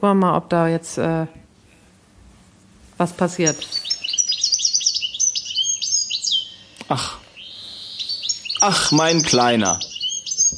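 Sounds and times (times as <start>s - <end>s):
speech: 0.0s - 1.4s, 3.0s - 3.8s, 6.9s - 7.2s, 8.6s - 9.9s
goldfinch song played from a recording: 3.2s - 10.5s.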